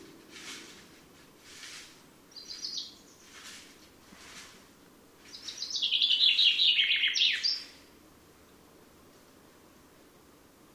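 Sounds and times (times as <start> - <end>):
common chaffinch Fringilla coelebs singing: 2.3 - 3.5, 5.3 - 7.9.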